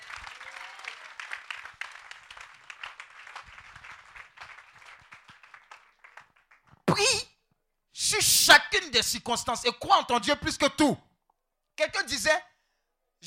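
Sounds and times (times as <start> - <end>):
church congregation applauding: 0.0 - 6.8
speech: 8.2 - 11.1, 11.8 - 12.5.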